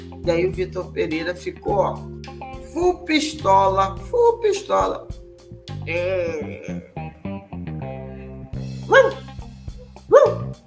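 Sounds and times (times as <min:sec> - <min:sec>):
speech: 0:00.2 - 0:02.2, 0:02.8 - 0:05.2, 0:05.8 - 0:06.9, 0:08.9 - 0:09.2
angry dog barking aggressively: 0:08.8 - 0:09.3, 0:10.1 - 0:10.6.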